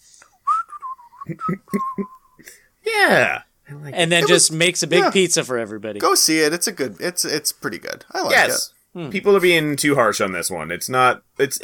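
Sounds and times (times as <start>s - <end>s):
person whistling a short wavering melody: 0.3s - 2.5s
speech: 1.3s - 11.6s.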